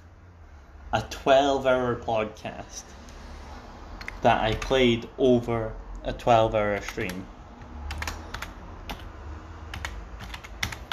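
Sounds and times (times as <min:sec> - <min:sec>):
low hum: 0:00.0 - 0:10.9
speech: 0:00.9 - 0:03.0, 0:04.2 - 0:07.3
typing on a computer keyboard while logging into a PC: 0:04.0 - 0:04.8, 0:06.7 - 0:07.2, 0:07.9 - 0:09.1, 0:09.7 - 0:10.9.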